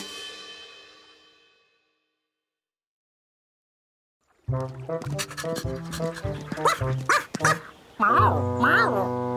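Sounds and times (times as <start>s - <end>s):
speech: 4.5s - 9.2s
dog barking and yipping: 5.2s - 7.7s.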